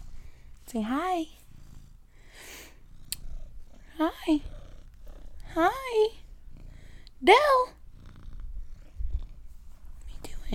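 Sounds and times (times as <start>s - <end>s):
cat purring: 0.0s - 10.5s
speech: 0.7s - 1.4s, 4.0s - 4.5s, 5.5s - 6.2s, 7.2s - 7.8s.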